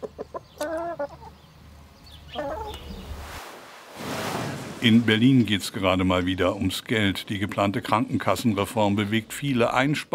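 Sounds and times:
chickens clucking while being vaccinated against Newcastle disease near Friedland: 0:00.0 - 0:03.1
steady outdoor hum: 0:00.0 - 0:10.1
speech: 0:04.8 - 0:10.1.

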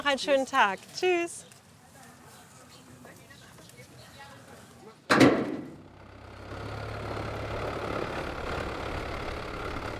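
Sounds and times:
speech: 0:00.0 - 0:01.5
sharp clunk: 0:05.1 - 0:05.8
boat motor engine running: 0:05.8 - 0:09.9.

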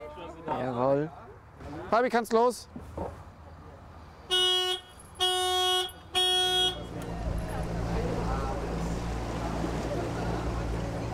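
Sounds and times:
speech: 0:00.5 - 0:01.2, 0:01.9 - 0:02.8
motorboat horn toots: 0:04.3 - 0:07.0
15 hp motorboat motor drone in city harbour: 0:06.4 - 0:11.1
water noise from motorboat in city harbour: 0:06.7 - 0:11.1.

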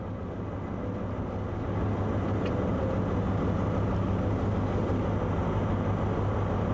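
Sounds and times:
heavy freight train locomotive engine rumbling: 0:00.0 - 0:06.7.

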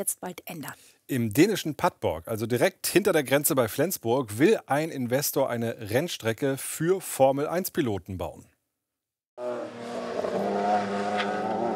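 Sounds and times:
speech: 0:00.0 - 0:08.5
race car engine droning on a racetrack near Padborg, Denmark: 0:09.4 - 0:11.7.

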